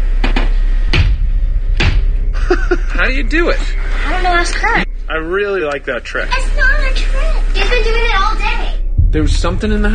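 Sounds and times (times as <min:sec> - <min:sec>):
steady low rumble in a horror film trailer: 0:00.0 - 0:09.9
child's knocking game knocks in a horror film trailer: 0:00.2 - 0:02.4
laughter: 0:02.4 - 0:03.2
speech: 0:02.7 - 0:09.9.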